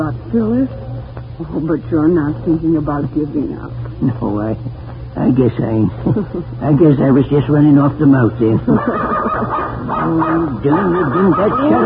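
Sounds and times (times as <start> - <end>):
speech: 0.0 - 0.8, 1.4 - 11.8
laughter: 5.9 - 6.7, 8.4 - 11.8
dog barking in high wavering whiny yelps: 8.8 - 11.8.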